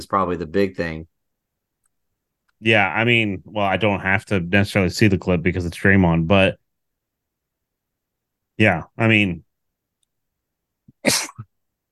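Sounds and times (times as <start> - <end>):
speech: 0.0 - 1.1, 2.6 - 6.6, 8.6 - 9.4, 11.0 - 11.5
sneeze: 11.0 - 11.5.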